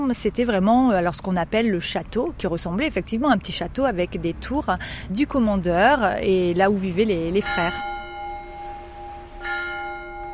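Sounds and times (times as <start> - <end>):
speech: 0.1 - 7.9
church bells ringing in a former castle town: 7.3 - 10.3.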